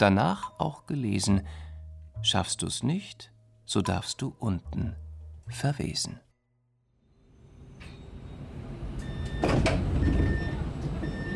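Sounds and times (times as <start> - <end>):
speech: 0.0 - 6.2
low rumble of engines and machinery at a train station: 7.2 - 11.3
door sliding at a train station: 7.6 - 11.3.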